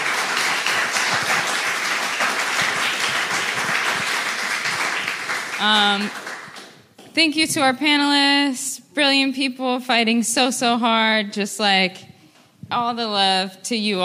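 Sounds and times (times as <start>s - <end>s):
crowd applause at the close of a panel discussion: 0.0s - 6.8s
speech: 5.6s - 6.2s, 7.2s - 12.1s, 12.7s - 14.0s.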